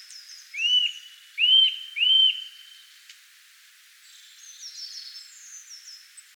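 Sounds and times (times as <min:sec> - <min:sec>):
Eurasian nuthatch giving clear upslurred whistles: 0:00.6 - 0:02.6.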